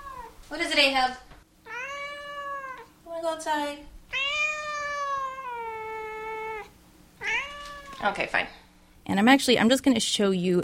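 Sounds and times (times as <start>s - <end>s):
black cat with a white nose meowing: 0.0s - 0.4s, 1.6s - 2.9s, 4.1s - 8.1s
speech: 0.5s - 1.3s, 3.2s - 4.0s, 8.0s - 10.6s.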